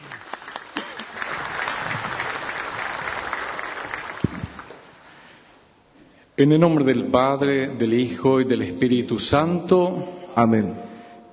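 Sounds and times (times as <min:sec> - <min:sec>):
audience applauding warmly: 0:00.0 - 0:05.3
speech: 0:06.4 - 0:10.9.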